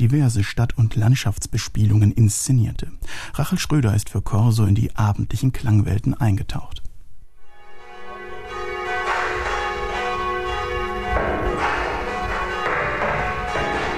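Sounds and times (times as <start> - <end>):
speech: 0.0 - 6.8
several church bells pealing outdoors: 7.5 - 13.9.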